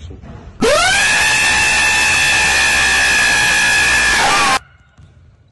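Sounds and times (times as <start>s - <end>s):
loud screaming: 0.6s - 4.6s.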